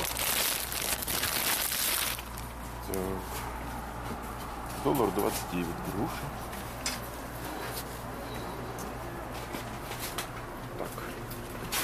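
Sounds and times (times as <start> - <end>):
plastic bag of grapes crinkling and rustling: 0.0 - 2.5
low hum: 0.0 - 11.8
speech: 2.9 - 3.4, 4.8 - 6.5.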